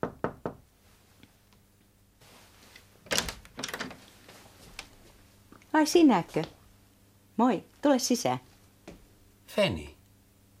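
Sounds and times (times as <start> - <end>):
sharp knocking on a door in London: 0.0 - 0.6
rustling and shuffling: 0.8 - 6.7
speech: 5.8 - 6.6, 7.4 - 8.5, 9.6 - 9.9.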